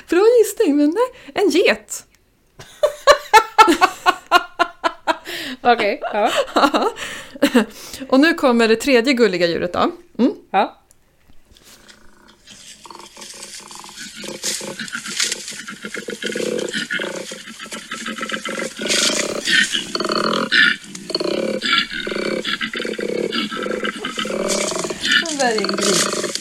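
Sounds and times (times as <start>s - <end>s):
speech: 0.1s - 2.1s, 5.6s - 10.8s, 25.4s - 26.2s
laughter: 2.6s - 7.7s
koala bellowing: 11.9s - 26.3s.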